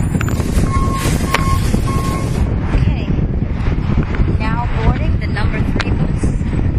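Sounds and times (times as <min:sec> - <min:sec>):
air-conditioned local city bus pulling up with engine rumbling: 0:00.0 - 0:06.7
wind buffeting the microphone: 0:00.0 - 0:06.7
short electronic beeps: 0:00.7 - 0:02.4.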